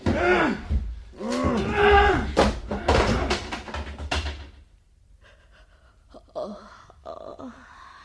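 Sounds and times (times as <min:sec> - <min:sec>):
door being smashed open by two men: 0:01.2 - 0:04.6.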